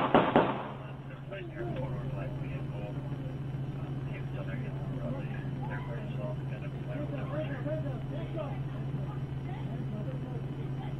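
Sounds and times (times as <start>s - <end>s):
gunfire during a police standoff around a car: 0.0s - 0.8s
steady low electrical hum: 0.0s - 10.9s
voices: 0.0s - 10.9s.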